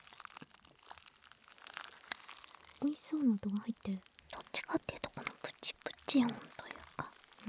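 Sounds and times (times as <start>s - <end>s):
crisp crunchy chewing of food: 0.0s - 7.4s
speech: 2.8s - 4.1s, 4.7s - 6.5s
brief soft voice: 2.8s - 7.4s.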